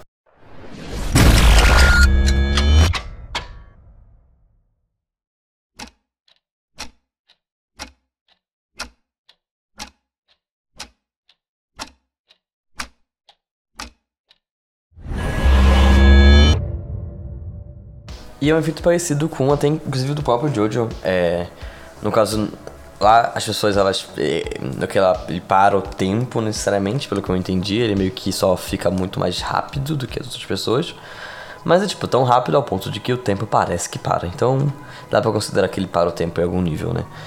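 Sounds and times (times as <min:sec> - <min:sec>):
loud whooshing sweep: 0:00.3 - 0:04.3, 0:15.0 - 0:18.4
clock ticking with crisp sharp ticks: 0:05.8 - 0:14.4, 0:18.1 - 0:32.8
speech: 0:18.4 - 0:37.2.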